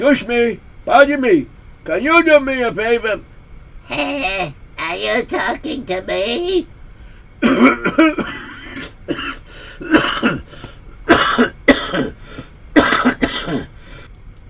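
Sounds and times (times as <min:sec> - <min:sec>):
speech: 0:00.0 - 0:06.7, 0:07.4 - 0:08.4, 0:09.1 - 0:10.4
man clearing his throat: 0:07.4 - 0:10.5, 0:11.1 - 0:12.2, 0:12.8 - 0:13.8
man coughing harshly: 0:07.4 - 0:13.8.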